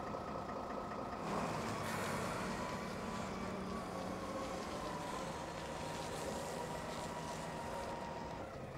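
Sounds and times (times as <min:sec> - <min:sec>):
heavy diesel engine of a container stacker running while lifting a boat: 0:00.0 - 0:08.7.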